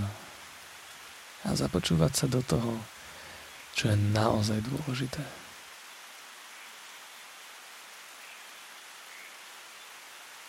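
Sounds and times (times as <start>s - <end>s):
steady rain falling: 0.0s - 10.4s
speech: 1.5s - 3.0s, 3.8s - 5.4s.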